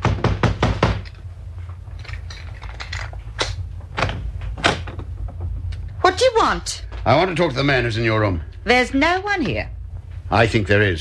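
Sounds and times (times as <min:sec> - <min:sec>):
police knocking on a locked door: 0:00.0 - 0:01.0
low rumble: 0:00.0 - 0:10.9
speech: 0:06.1 - 0:10.9.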